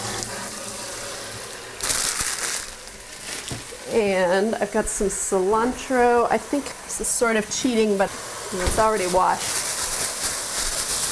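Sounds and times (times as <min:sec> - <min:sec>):
tap water running over bean sprouts: 0:00.0 - 0:11.1
speech: 0:03.9 - 0:09.6.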